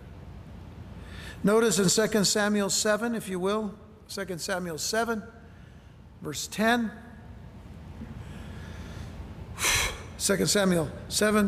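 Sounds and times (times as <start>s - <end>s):
heavy breath drawn in sharply while straightening posture: 1.0s - 1.4s, 8.1s - 10.2s
speech: 1.3s - 5.4s, 6.2s - 7.0s, 10.2s - 11.4s.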